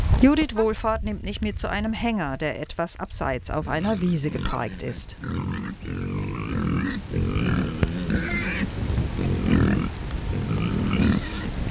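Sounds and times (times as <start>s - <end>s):
speech: 0.2s - 6.5s
several pigs grunting and snorting in a trailer: 3.8s - 11.6s
pig squeals in a trailer: 5.2s - 8.7s, 9.3s - 11.6s.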